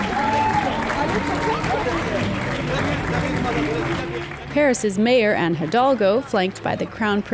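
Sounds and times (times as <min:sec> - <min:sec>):
excited shoppers' voices shouting over one another: 0:00.0 - 0:02.2
crowd of shoppers cheering as store doors open: 0:00.0 - 0:07.2
speech: 0:04.6 - 0:07.3.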